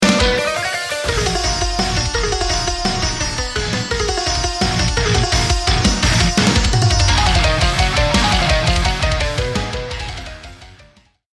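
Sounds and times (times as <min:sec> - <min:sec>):
sitar: 0:00.0 - 0:10.8
synthesizer: 0:00.0 - 0:11.2.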